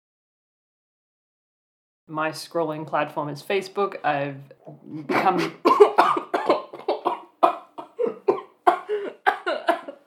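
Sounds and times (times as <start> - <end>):
speech: 2.1 - 6.2
woman coughing fit brought on by laughing while drinking water: 5.0 - 10.0.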